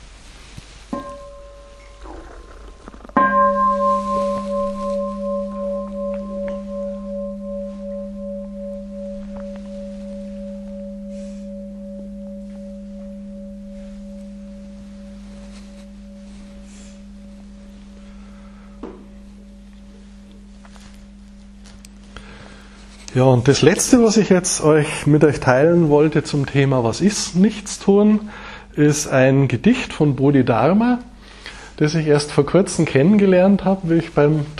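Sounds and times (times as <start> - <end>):
faint soft rustles: 0.0 - 18.4, 19.0 - 26.4
meditation bell ringing: 0.9 - 34.5
speech: 23.2 - 31.1, 31.8 - 34.5.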